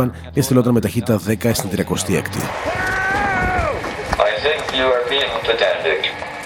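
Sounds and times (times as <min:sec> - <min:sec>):
speech: 0:00.0 - 0:03.0, 0:04.4 - 0:06.3
rumbling noise: 0:00.4 - 0:06.4
man screaming as a wheelchair runs him over: 0:02.5 - 0:03.8.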